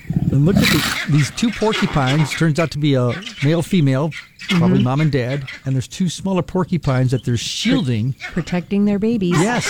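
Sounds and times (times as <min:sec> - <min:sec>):
pigs squealing: 0:00.1 - 0:01.1
speech: 0:00.3 - 0:09.6.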